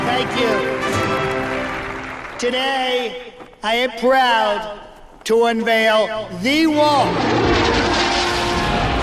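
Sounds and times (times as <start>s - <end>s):
speech: 0.2s - 0.7s, 2.4s - 7.5s
jet aircraft engines roaring overhead: 6.8s - 9.0s.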